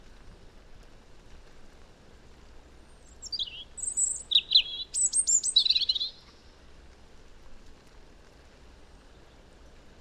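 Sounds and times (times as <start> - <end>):
European robin Erithacus rubecula singing: 3.0 - 6.2.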